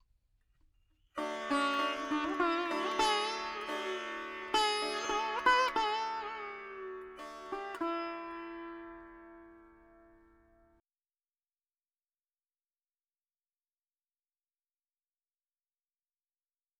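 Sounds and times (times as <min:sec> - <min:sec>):
dry veena melody in 4/4 D at 100 BPM: 0:01.2 - 0:10.8.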